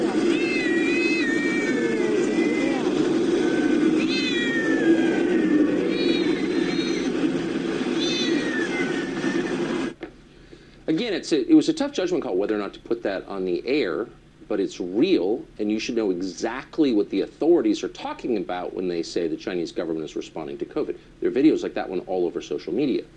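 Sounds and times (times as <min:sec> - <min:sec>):
confiscated house cats meowing in bags on sidewalks in China: 0:00.2 - 0:10.0
speech: 0:11.3 - 0:23.1.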